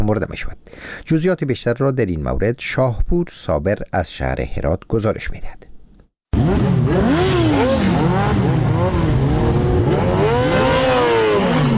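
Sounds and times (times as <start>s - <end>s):
speech: 0.1s - 5.7s
heavy motorcycle exhausts revving: 6.3s - 11.7s.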